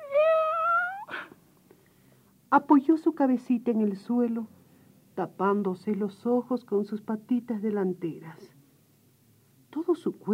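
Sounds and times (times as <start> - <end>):
kitten meowing: 0.0 - 1.2
speech: 2.5 - 4.6, 5.2 - 8.6, 9.8 - 10.3.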